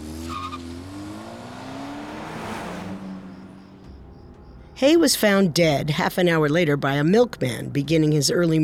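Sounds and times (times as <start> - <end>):
car tires squealing: 0.0 - 4.3
car engine revving and accelerating: 0.0 - 7.6
speech: 4.8 - 8.6.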